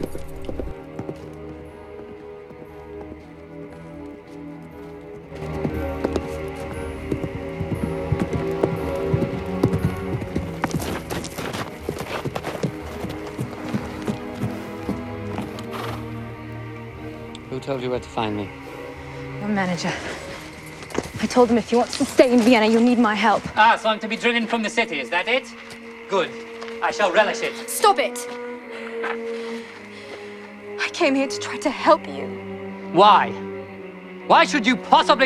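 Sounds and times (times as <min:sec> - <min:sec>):
horse galloping through forest: 0:00.0 - 0:16.4, 0:19.5 - 0:26.7
orchestral music bed: 0:00.0 - 0:35.2
speech: 0:17.7 - 0:18.6, 0:19.6 - 0:20.2, 0:21.3 - 0:28.4, 0:31.0 - 0:33.4, 0:34.3 - 0:35.2.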